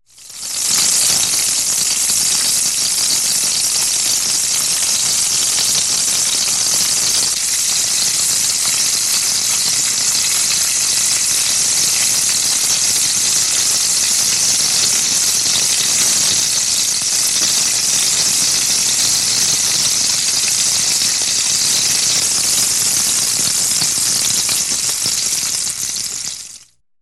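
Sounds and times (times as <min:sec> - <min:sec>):
food frying: 0:00.1 - 0:26.7.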